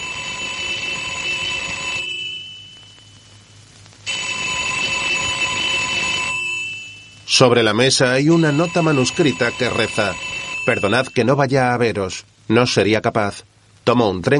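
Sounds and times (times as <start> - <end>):
telephone ringing in a half-dark room of a house: 0.0 - 11.6
speech: 7.4 - 14.3.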